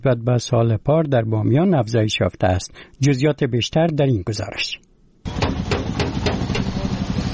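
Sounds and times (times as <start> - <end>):
speech: 0.0 - 4.9
boy striking a car body with a hammer in a car repair shop: 5.3 - 6.8
workshop noise in a car repair shop: 5.3 - 7.3
continuous low engine-like rumble in a car repair shop: 5.4 - 7.3.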